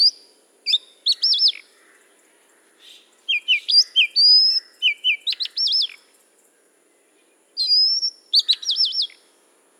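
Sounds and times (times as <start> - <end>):
Oriental magpie-robin singing melodious whistles and trills at Udahamulla: 0.0 - 1.7, 2.8 - 6.1, 7.6 - 9.3.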